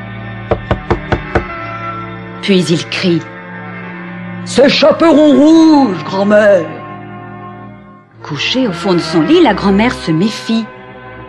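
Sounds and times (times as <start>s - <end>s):
knocking on a door: 0.5s - 1.6s
speech: 2.4s - 3.3s, 4.4s - 6.8s, 8.3s - 10.7s.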